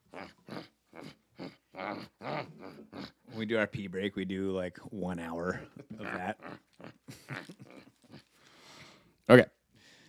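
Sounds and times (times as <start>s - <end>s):
dog growling: 0.0s - 3.4s, 5.5s - 8.2s
speech: 3.4s - 6.5s, 9.3s - 9.5s.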